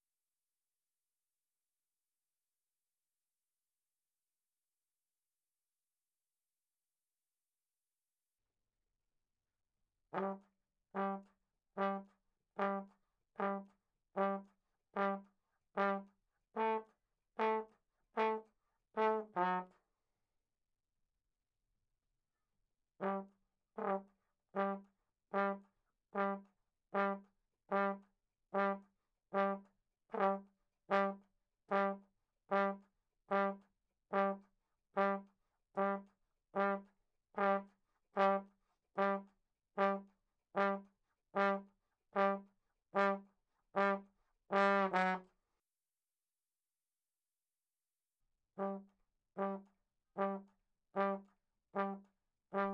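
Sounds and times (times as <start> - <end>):
ragtime trombone: 10.1 - 10.4, 11.0 - 11.2, 11.8 - 14.4, 15.0 - 15.2, 15.8 - 16.8, 17.4 - 17.6, 18.2 - 18.4, 19.0 - 19.7, 23.0 - 24.0, 24.6 - 25.6, 26.2 - 26.4, 27.0 - 28.0, 28.6 - 28.8, 29.4 - 34.4, 35.0 - 35.2, 35.8 - 36.0, 36.6 - 36.8, 37.4 - 38.4, 39.0 - 39.2, 40.6 - 40.8, 41.4 - 41.6, 43.0 - 43.2, 43.8 - 45.2, 48.6 - 48.8, 49.4 - 49.6, 50.2 - 50.4, 51.0 - 51.2, 51.8 - 52.7.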